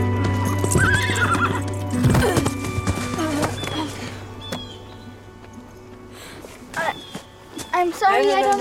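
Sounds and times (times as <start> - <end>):
horse hooves clip-clopping: 0.0 - 8.5
speech: 0.7 - 1.0, 8.0 - 8.5
horse whinnying: 0.7 - 3.7.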